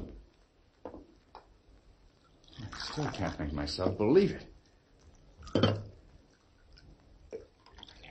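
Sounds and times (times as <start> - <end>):
coffee being poured into a cup by a robot: 2.2 - 4.0, 4.6 - 8.0
speech: 3.0 - 4.5.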